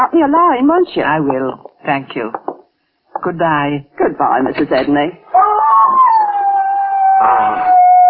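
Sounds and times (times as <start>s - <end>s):
speech: 0.0s - 2.4s, 3.2s - 5.5s, 7.2s - 7.7s
dog howling: 5.3s - 8.0s.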